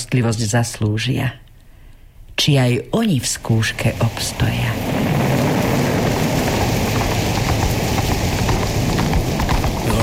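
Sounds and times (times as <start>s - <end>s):
speech: 0.1s - 1.4s, 2.4s - 5.2s
heavy rain: 3.2s - 10.0s
gusting wind: 3.3s - 10.0s.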